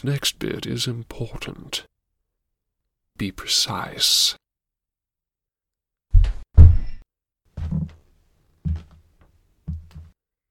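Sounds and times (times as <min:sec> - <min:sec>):
speech: 0:00.0 - 0:02.0, 0:03.2 - 0:04.4
heavy footsteps thudding overhead: 0:06.1 - 0:07.0, 0:07.6 - 0:10.2.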